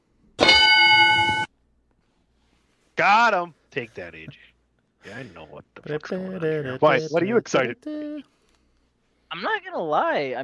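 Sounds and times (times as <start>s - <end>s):
bright metallic bell chime: 0.4s - 1.5s
speech: 3.0s - 8.4s, 9.3s - 10.4s.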